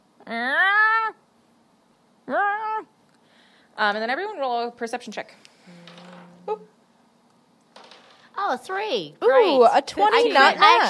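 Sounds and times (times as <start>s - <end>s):
human voice imitating an agitated cat yowling: 0.2s - 1.2s, 2.2s - 3.0s
speech: 3.8s - 5.8s, 8.5s - 10.8s.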